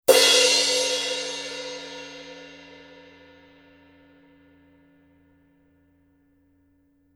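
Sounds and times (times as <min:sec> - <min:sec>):
Paiste Color Sound 900 Blue heavy crash cymbal: 0:00.1 - 0:04.1.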